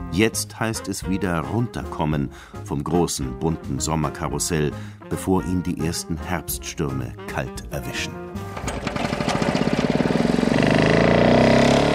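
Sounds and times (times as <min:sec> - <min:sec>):
speech: 0:00.1 - 0:09.1
small lawn mower engine revving: 0:08.4 - 0:11.9.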